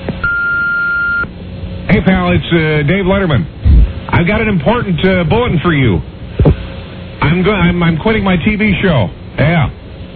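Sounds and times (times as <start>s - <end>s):
long steady answering machine beep: 0.2s - 1.3s
noise: 1.4s - 10.1s
speech: 2.1s - 3.6s, 4.2s - 6.2s, 7.2s - 9.8s.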